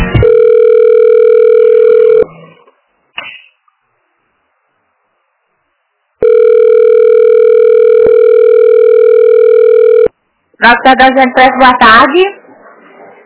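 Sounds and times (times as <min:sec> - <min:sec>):
telephone busy tone from an internal office extension: 0:00.2 - 0:02.3, 0:06.2 - 0:10.2
speech: 0:10.7 - 0:12.3.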